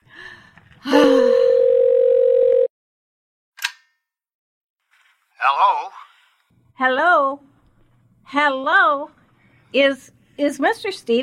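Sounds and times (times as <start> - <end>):
telephone ringing tone: 1.5 - 2.7
speech: 6.8 - 7.5, 8.3 - 11.2.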